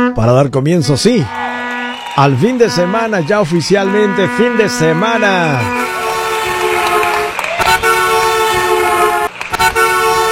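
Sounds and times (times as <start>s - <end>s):
speech: 0.2s - 1.4s, 2.2s - 5.9s
official five o'clock afternoon whistle blast: 1.2s - 10.3s.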